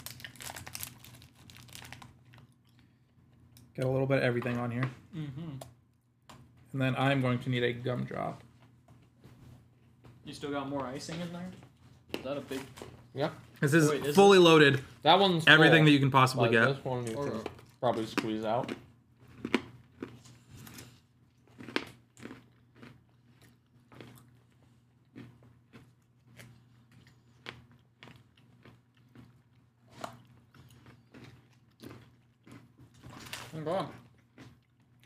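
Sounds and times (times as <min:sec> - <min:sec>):
crunching and chewing a crisp gingerbread cookie: 0:00.0 - 0:03.8, 0:16.9 - 0:35.0
low hum: 0:00.0 - 0:35.0
speech: 0:03.8 - 0:05.8, 0:06.7 - 0:08.5, 0:10.3 - 0:18.8.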